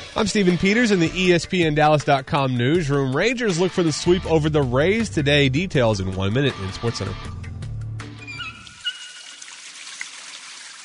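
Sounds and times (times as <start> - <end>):
water running from a faucet: 0.0 - 1.2, 8.4 - 10.8
speech: 0.2 - 7.4.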